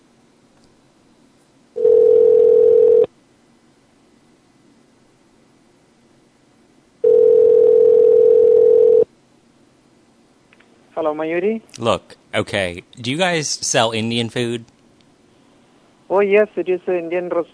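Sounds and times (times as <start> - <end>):
telephone ringback tone ringing unanswered: 1.8 - 3.1, 7.0 - 9.1
speech: 11.0 - 14.7, 16.1 - 17.5.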